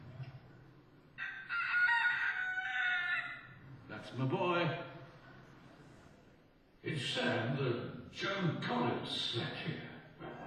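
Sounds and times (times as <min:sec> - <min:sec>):
rooster crowing: 0:01.2 - 0:03.6
speech: 0:04.1 - 0:04.9, 0:06.8 - 0:09.9.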